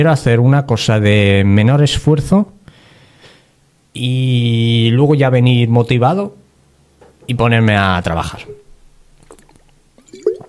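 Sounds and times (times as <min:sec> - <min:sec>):
speech: 0:00.0 - 0:02.6, 0:04.0 - 0:06.4, 0:07.2 - 0:08.6
person gulping water: 0:09.2 - 0:10.4
person sipping and slurping water: 0:09.2 - 0:10.4.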